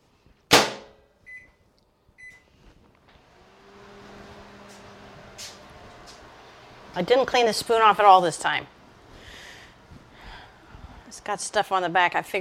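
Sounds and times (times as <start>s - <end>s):
microwave oven humming on high: 3.1s - 11.0s
speech: 7.0s - 8.8s, 11.3s - 12.4s.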